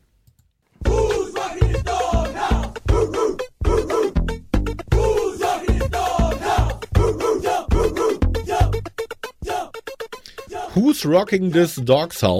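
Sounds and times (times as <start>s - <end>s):
chanted, shouted group hook: 0.8s - 4.2s, 4.9s - 8.8s, 9.4s - 9.8s, 10.4s - 10.8s
song played loudly from a CD in a car driving through Florida: 0.8s - 10.6s
driving, repetitive beat: 0.8s - 12.1s
speech: 11.0s - 12.3s.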